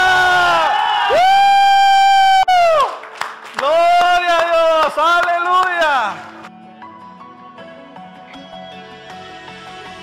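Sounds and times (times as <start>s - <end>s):
scattered whoops from the crowd: 0.0s - 2.9s
audience shouting in jubilation on a count of three: 0.0s - 6.4s.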